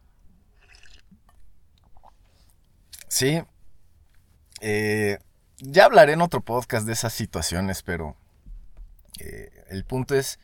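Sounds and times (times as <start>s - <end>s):
small liquid swallows: 0.5s - 2.2s
person sipping coffee from a cup: 0.5s - 2.3s
speech: 3.2s - 3.5s, 4.6s - 8.2s, 9.2s - 10.4s.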